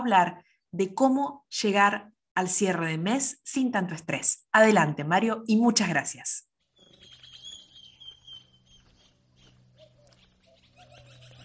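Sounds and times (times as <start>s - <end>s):
speech: 0.0s - 6.5s
farm animals at a moderate distance: 6.6s - 11.4s
high thin bird chirps and calls in rural morning: 6.7s - 11.4s.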